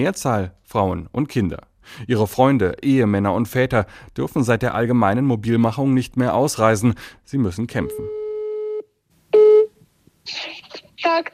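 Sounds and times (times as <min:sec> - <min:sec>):
speech: 0:00.0 - 0:08.2, 0:10.3 - 0:11.3
telephone ringing tone: 0:07.9 - 0:08.8.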